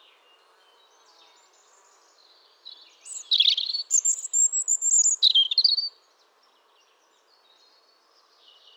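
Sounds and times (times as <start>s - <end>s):
European robin Erithacus rubecula song: 3.0s - 5.9s.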